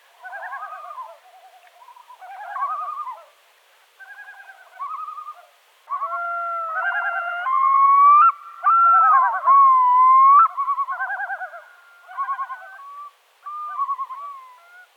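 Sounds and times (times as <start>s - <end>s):
Yellow-billed loons quavering display calls: 0.2s - 1.2s, 4.0s - 14.8s.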